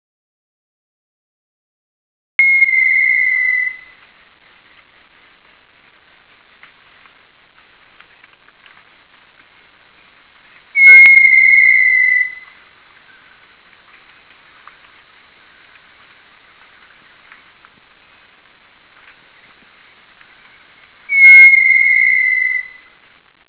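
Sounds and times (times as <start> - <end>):
little tinamou calling on the Costa Maya: 2.4 - 3.9, 10.8 - 13.4, 21.1 - 22.9
birds on the Costa Maya: 2.4 - 4.1, 8.2 - 18.3, 18.9 - 23.0.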